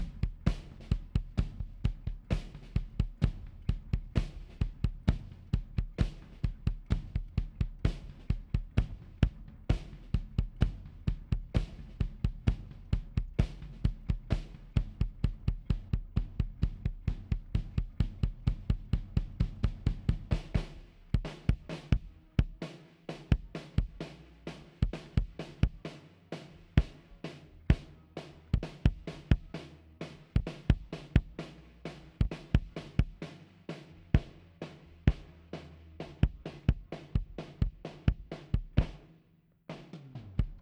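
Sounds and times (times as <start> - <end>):
kick drum: 0.0 - 22.6, 23.2 - 24.1, 24.8 - 25.8, 28.6 - 29.5, 30.4 - 31.4, 32.2 - 33.3, 34.2 - 34.4, 35.1 - 35.3, 36.0 - 39.1, 40.4 - 40.5.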